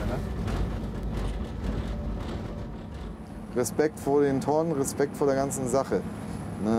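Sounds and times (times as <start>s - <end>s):
faint rattling: 0.0s - 4.7s
heavy train locomotive rumbling on wet rails in rain: 0.0s - 6.7s
speech: 3.6s - 6.7s.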